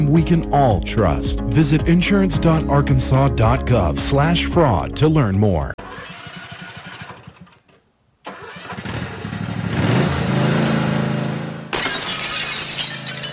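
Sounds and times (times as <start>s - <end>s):
speech: 0.1s - 6.1s
lawnmower engine revving and running: 5.8s - 7.6s, 8.3s - 11.7s
car window glass shattering: 11.7s - 13.3s.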